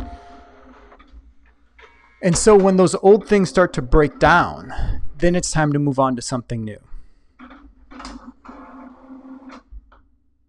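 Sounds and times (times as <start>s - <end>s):
speech: 2.2s - 6.9s
printer whirring and clattering as it shuts down: 2.3s - 4.4s.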